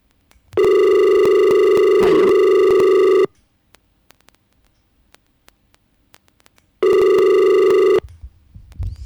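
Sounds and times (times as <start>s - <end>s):
telephone ringing on a radio phone-in line: 0.6s - 3.4s, 6.8s - 8.0s.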